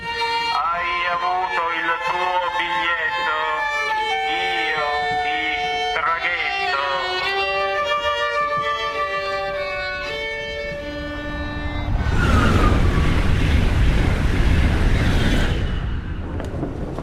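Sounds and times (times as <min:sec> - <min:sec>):
train arriving at a station with rail noise rumble: 0:00.0 - 0:17.0
train horn-like chord: 0:00.2 - 0:12.0.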